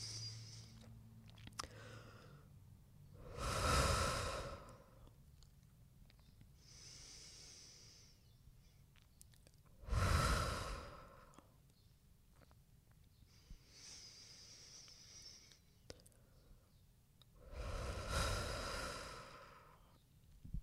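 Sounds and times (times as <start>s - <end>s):
deep breaths: 0.0s - 1.0s, 1.6s - 5.2s, 6.6s - 8.9s, 9.8s - 11.6s, 13.2s - 16.7s, 17.4s - 20.0s.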